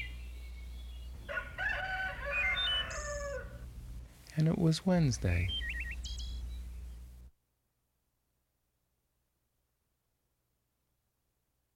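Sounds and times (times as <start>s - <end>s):
low hum: 0.0s - 7.4s
rooster crowing: 1.2s - 3.7s
speech: 4.4s - 5.7s.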